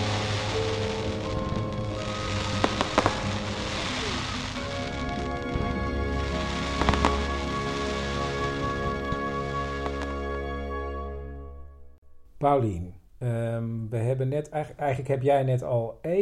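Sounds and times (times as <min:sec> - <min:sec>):
large fireworks display over a park booming and crackling: 0:00.0 - 0:10.2
sustained droning tone: 0:00.0 - 0:12.3
speech: 0:12.4 - 0:16.2.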